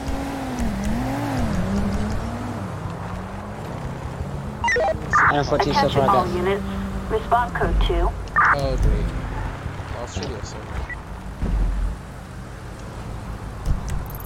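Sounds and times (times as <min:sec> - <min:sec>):
car engine in a police-pursuit video game: 0:00.0 - 0:14.2
speech: 0:05.3 - 0:09.2, 0:10.1 - 0:10.9.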